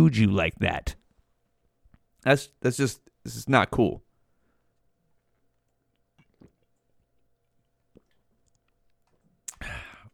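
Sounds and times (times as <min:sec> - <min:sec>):
speech: 0:00.0 - 0:01.0, 0:02.2 - 0:04.0
wet mouth clicks: 0:05.7 - 0:09.7
slurping gulp of water: 0:06.2 - 0:07.0.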